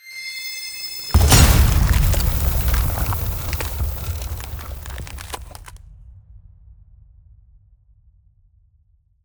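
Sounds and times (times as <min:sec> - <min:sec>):
ice spell explosion impact: 0:01.2 - 0:05.7.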